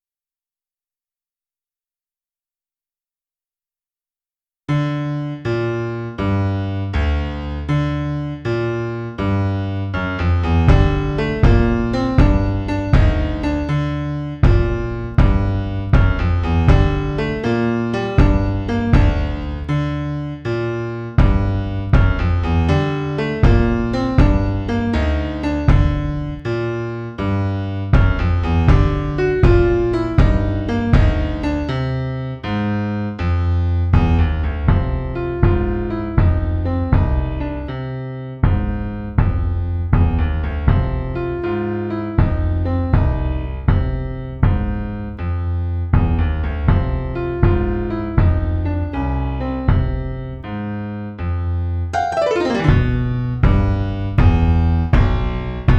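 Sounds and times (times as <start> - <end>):
piano: 4.7 - 55.7
bass drum: 10.4 - 19.9, 21.2 - 26.5, 27.9 - 31.8, 33.9 - 37.5, 38.4 - 41.4, 42.2 - 45.2, 45.9 - 49.0, 49.7 - 50.5, 52.0 - 55.7.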